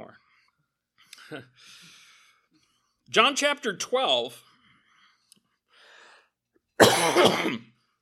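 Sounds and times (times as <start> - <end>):
speech: 1.3 - 2.0, 3.1 - 4.5, 7.0 - 7.7
preacher coughing during a sermon: 6.8 - 7.7.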